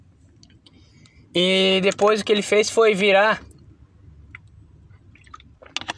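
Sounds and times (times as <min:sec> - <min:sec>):
speech: 0:01.3 - 0:03.5
person sipping water: 0:05.0 - 0:05.9
swallow: 0:05.1 - 0:05.9.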